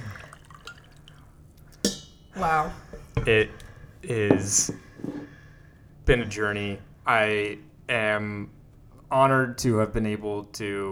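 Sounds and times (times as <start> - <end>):
liquid pouring into a glass: 0.0 - 5.3
speech: 2.4 - 4.9, 6.1 - 10.9.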